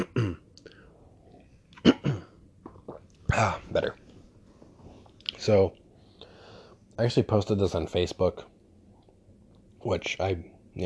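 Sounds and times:
rough throat clearing after taking a drink: 0.0s - 0.5s, 1.8s - 2.4s
faint mouth or swallowing sounds: 2.6s - 3.3s
speech: 3.4s - 4.0s, 5.4s - 5.8s, 7.0s - 8.5s, 9.8s - 10.8s.

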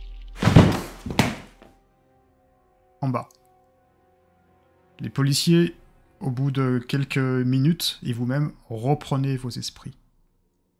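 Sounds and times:
heavy thud of a man landing after falling through a window: 0.4s - 1.6s
impact: 0.4s - 1.6s
speech: 3.1s - 3.4s, 5.0s - 10.0s.

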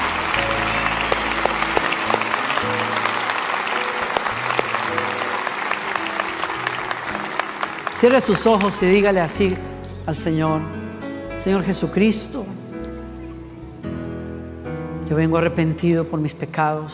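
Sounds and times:
audience applause: 0.0s - 9.2s
speech: 8.0s - 10.8s, 11.4s - 12.6s, 15.1s - 16.9s.

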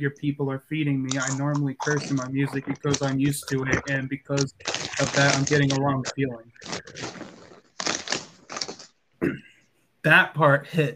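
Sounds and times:
speech: 0.0s - 7.3s, 9.2s - 10.9s
bag of potato chips rustling and crinkling: 1.0s - 9.0s.

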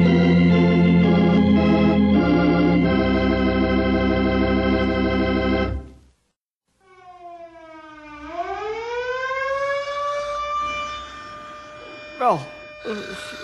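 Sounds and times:
air raid siren wailing: 0.0s - 5.6s, 6.8s - 13.4s
brief voice bursts: 12.2s - 13.4s.

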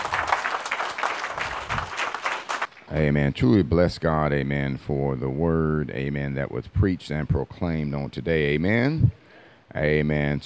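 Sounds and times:
church congregation clapping hands in praise: 0.0s - 2.9s
speech: 2.9s - 10.4s.

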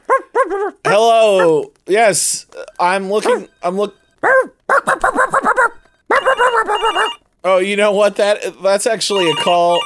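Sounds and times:
person imitating a dog barking: 0.1s - 1.7s, 4.2s - 7.2s
speech: 0.5s - 5.7s, 6.4s - 9.8s.

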